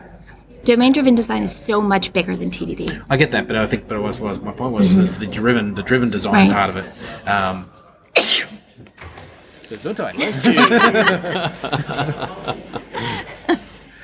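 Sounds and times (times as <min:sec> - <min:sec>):
speech: 0:00.6 - 0:08.5, 0:09.7 - 0:12.7
person sneezing: 0:08.2 - 0:08.6
people chuckling: 0:10.2 - 0:14.0.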